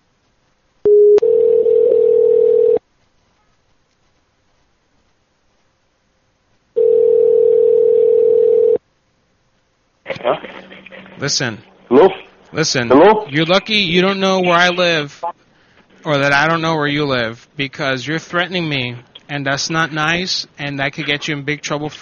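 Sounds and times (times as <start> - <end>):
telephone line tones while calling someone back: 0.9 - 2.8, 6.8 - 8.8
speech: 11.2 - 15.2, 16.0 - 21.9.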